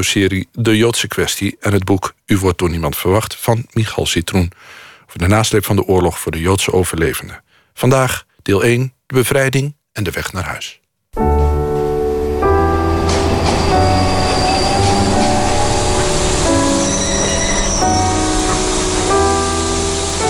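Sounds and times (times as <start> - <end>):
speech: 0.0 - 11.4
train pulling into a station rumbling: 11.7 - 20.2
metallic squealing of train wheels or brakes: 12.0 - 20.2.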